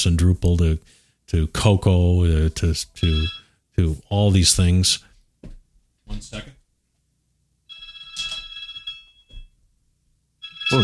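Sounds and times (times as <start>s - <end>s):
speech: 0.0s - 5.1s, 6.1s - 6.6s, 10.7s - 10.8s
home telephone ringing with a trilling electronic bell: 3.0s - 3.5s, 7.7s - 9.3s, 10.4s - 10.8s.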